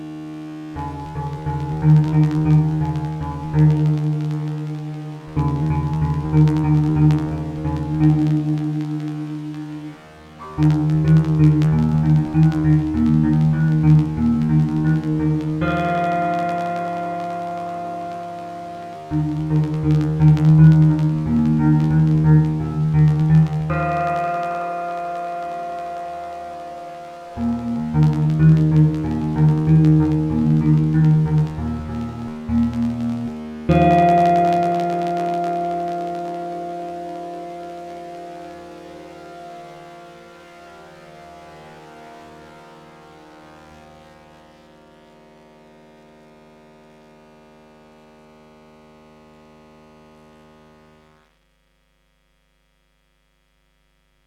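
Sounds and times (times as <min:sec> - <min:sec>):
guitar with short delay: 0:00.0 - 0:42.3.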